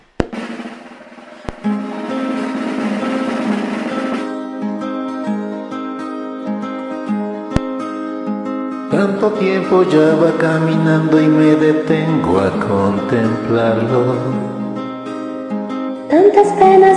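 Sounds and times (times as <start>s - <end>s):
recorded song with full instrumental arrangement: 0.2s - 15.2s
speech: 9.1s - 14.6s, 16.2s - 16.9s.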